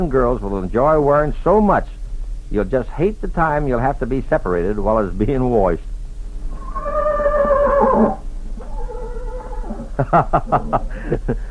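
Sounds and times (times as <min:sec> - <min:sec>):
speech: 0:00.0 - 0:05.9, 0:07.9 - 0:08.2, 0:10.0 - 0:11.4
horse whinnying: 0:06.4 - 0:10.0
laughter: 0:09.9 - 0:11.4.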